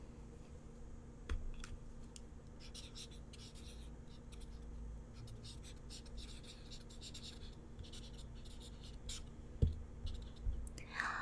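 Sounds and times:
faint low hum: 0.0 - 11.2
pen writing on paper: 2.6 - 4.6, 5.3 - 9.3, 10.1 - 10.5.

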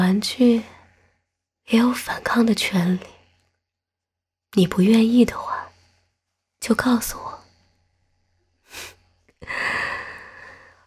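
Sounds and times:
speech: 0.1 - 0.7, 1.7 - 3.2, 4.5 - 5.6, 6.6 - 7.4
heavy breathing with sharp inhale and rasping exhale: 8.6 - 10.8.

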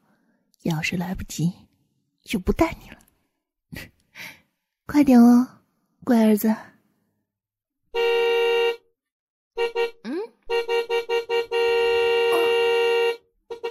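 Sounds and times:
speech: 0.6 - 3.0, 3.7 - 6.7, 7.9 - 8.3
car horn honking: 7.9 - 8.8, 9.6 - 13.6.

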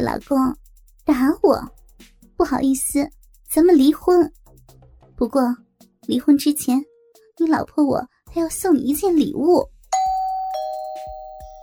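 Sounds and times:
speech: 0.0 - 1.8, 2.4 - 4.4, 5.2 - 9.7
electronic doorbell chime: 10.0 - 11.6.

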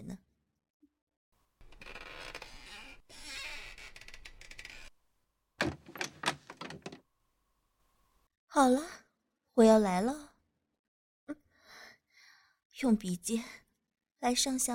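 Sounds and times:
chair clicks and creaks as it settles: 1.6 - 4.9, 5.6 - 7.0
chair being reclined flat with mechanical grinding rattle: 5.6 - 7.0
speech: 8.6 - 9.0, 9.6 - 10.3, 12.8 - 13.6, 14.2 - 14.7.

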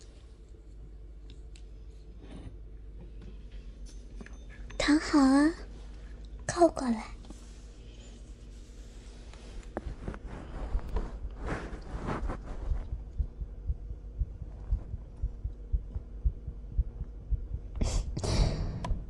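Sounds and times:
speech: 4.9 - 5.6, 6.6 - 7.2
fabric rustling: 8.6 - 13.2
woman's fast heartbeat heard against the left side of her chest: 10.7 - 19.0.

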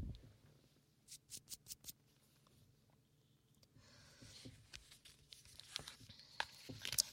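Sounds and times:
crinkly rustling of small notebook pages being handled and turned: 4.3 - 7.1
crisp notebook page flips: 4.3 - 7.1.

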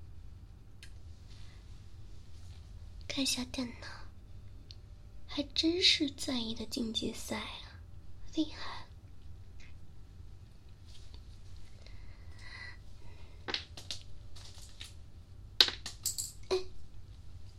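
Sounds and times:
speech: 3.2 - 4.0, 5.4 - 7.6, 8.3 - 8.8
pen dropping on the floor: 13.5 - 14.0, 15.6 - 16.4.

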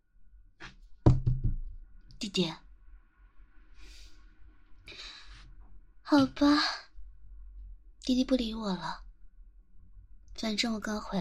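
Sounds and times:
knocking on a door: 1.0 - 1.7
speech: 2.2 - 2.6, 6.1 - 6.8, 8.0 - 9.0, 10.4 - 11.1.

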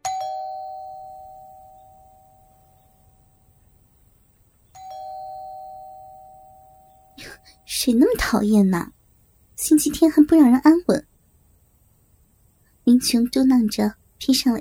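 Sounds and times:
electronic doorbell chime: 0.0 - 3.3, 4.8 - 7.2
speech: 7.8 - 9.0, 9.7 - 11.1, 13.0 - 14.5.

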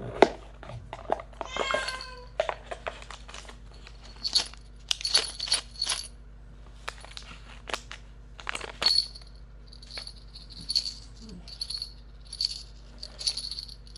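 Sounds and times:
steady low hum: 0.0 - 13.9
small bell jingling: 4.0 - 6.1, 8.8 - 13.9.

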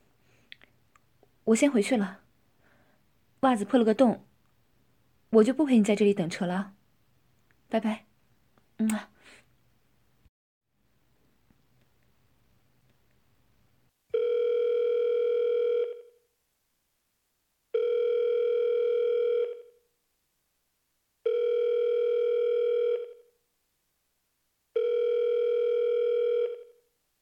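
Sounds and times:
speech: 1.5 - 2.2, 3.4 - 4.3, 5.3 - 6.8, 7.7 - 8.1, 8.8 - 9.1
telephone ringback tone of an unanswered call: 14.1 - 16.2, 17.7 - 19.8, 21.2 - 23.3, 24.8 - 26.8.

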